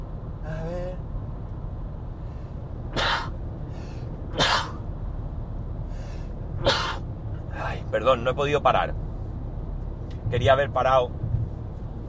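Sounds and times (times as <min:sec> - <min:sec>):
car interior rumble: 0:00.0 - 0:12.0
breaths: 0:02.2 - 0:02.6, 0:03.6 - 0:04.2, 0:05.8 - 0:06.4
person sneezing while driving a car: 0:02.9 - 0:03.4, 0:04.3 - 0:04.8, 0:06.6 - 0:07.0
speech: 0:07.9 - 0:09.0, 0:10.3 - 0:11.2.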